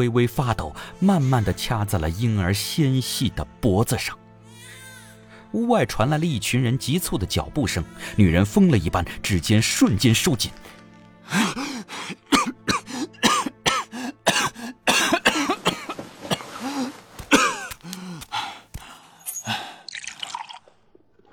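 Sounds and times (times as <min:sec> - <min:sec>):
speech: 0:00.0 - 0:04.2, 0:05.5 - 0:11.5
person coughing like someone nearly drowned: 0:12.3 - 0:18.8
choking gasps and strained groans: 0:16.6 - 0:20.0.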